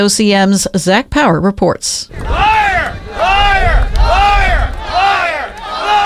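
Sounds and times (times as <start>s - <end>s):
speech: 0.0s - 2.5s
protest crowd chanting in unison: 2.1s - 6.0s.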